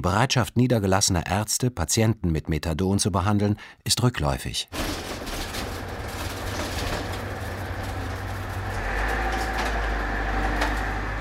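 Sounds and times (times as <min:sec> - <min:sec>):
speech: 0:00.0 - 0:05.2
faint higher rattles: 0:04.7 - 0:10.9
bus engine rumbling while driving through a city: 0:04.8 - 0:11.1
bus road noise: 0:05.0 - 0:11.1.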